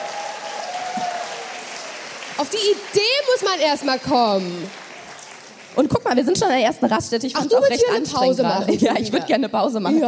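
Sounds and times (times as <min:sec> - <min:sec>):
audience applause: 0:00.0 - 0:06.8
speech: 0:02.4 - 0:04.8, 0:05.8 - 0:10.0.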